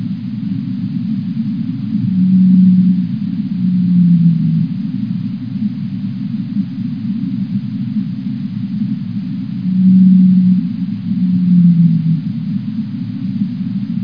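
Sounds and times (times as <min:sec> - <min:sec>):
blue whale low hums: 0:00.0 - 0:14.0
low rumbling noise: 0:00.0 - 0:14.0.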